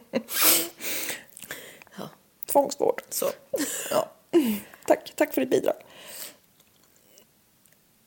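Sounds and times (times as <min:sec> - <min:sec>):
quick breathy inhales through the nose: 0:00.3 - 0:01.9, 0:05.9 - 0:06.4
speech: 0:02.6 - 0:06.1.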